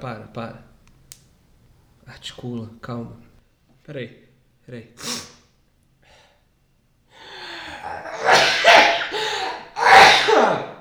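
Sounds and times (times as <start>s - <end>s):
speech: 0.0s - 0.7s, 2.1s - 3.3s, 3.9s - 5.3s
loud sneezes after a breathy intake: 5.0s - 5.4s, 7.7s - 10.7s.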